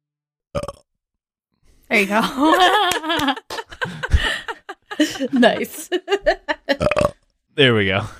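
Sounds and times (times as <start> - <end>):
loud rough gurgling burp: 0.6 - 0.9, 6.8 - 7.2
speech: 1.9 - 3.4, 5.0 - 6.4, 7.6 - 8.1
laughter: 2.0 - 6.8.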